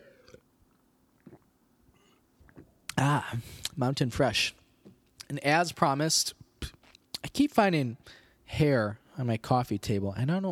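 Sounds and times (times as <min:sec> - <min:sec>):
person sipping water: 0:00.0 - 0:03.0
faint hum: 0:00.0 - 0:10.5
speech: 0:03.0 - 0:04.6, 0:05.3 - 0:06.4, 0:07.4 - 0:10.5.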